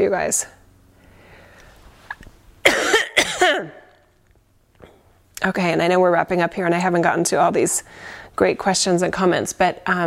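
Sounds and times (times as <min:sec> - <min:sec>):
speech: 0:00.0 - 0:00.6, 0:03.5 - 0:03.8, 0:05.4 - 0:10.0
harsh raspy coughs: 0:02.6 - 0:03.9.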